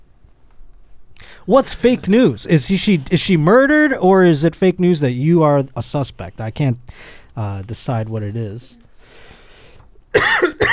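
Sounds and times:
speech: 0:01.5 - 0:09.3
person coughing: 0:10.1 - 0:10.7.

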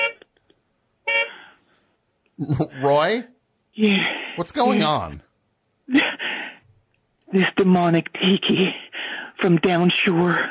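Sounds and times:
car horns honking: 0:00.0 - 0:00.2, 0:01.1 - 0:01.4
laughter: 0:02.4 - 0:03.2
speech: 0:02.4 - 0:05.3, 0:07.3 - 0:08.8, 0:09.4 - 0:10.4.

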